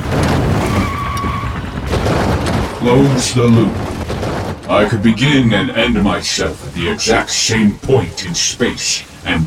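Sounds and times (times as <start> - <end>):
heavy car crash: 0.0 - 5.7
loud rumbling road noise: 0.0 - 9.4
car tires squealing in a skid: 0.2 - 2.0
speech: 2.8 - 3.9, 4.7 - 9.4.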